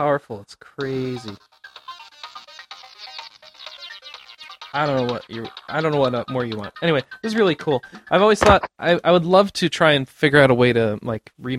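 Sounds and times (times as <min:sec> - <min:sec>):
speech: 0:00.0 - 0:01.8, 0:04.7 - 0:11.5
bright tinny synthesized melody played on a phone music app: 0:01.0 - 0:08.7.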